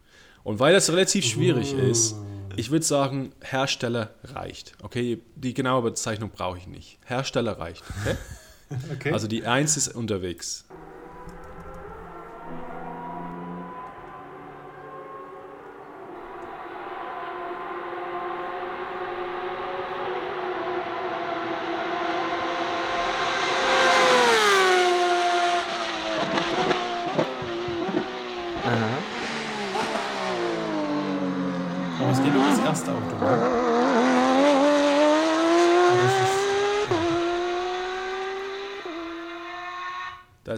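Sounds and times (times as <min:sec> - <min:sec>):
speech: 0:00.4 - 0:10.9
laughter: 0:01.2 - 0:02.6, 0:07.8 - 0:09.7
race car engine roaring through gear changes: 0:10.7 - 0:40.2.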